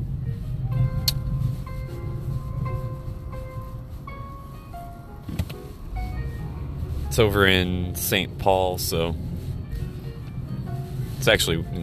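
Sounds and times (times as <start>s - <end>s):
car driving along city streets, engine and road rumble: 0.0s - 11.8s
speech: 7.2s - 9.3s, 11.2s - 11.8s.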